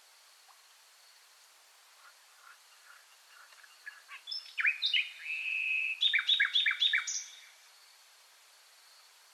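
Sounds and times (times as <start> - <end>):
Luscinia megarhynchos common nightingale singing: 2.0 - 7.9.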